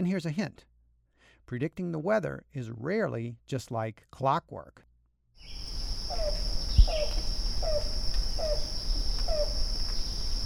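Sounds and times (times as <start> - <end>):
speech: 0.0 - 0.7, 1.5 - 5.7
high insect buzz: 5.4 - 10.4
Yellow-billed Cuckoo giving hollow downslurred cooing notes in Blacksburg, Virginia: 6.1 - 9.6.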